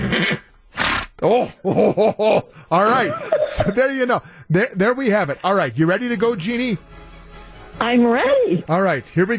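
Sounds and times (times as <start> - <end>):
horse whinnying: 0.0 - 1.3
laughter: 1.2 - 4.0
speech: 1.2 - 7.1, 7.8 - 9.3.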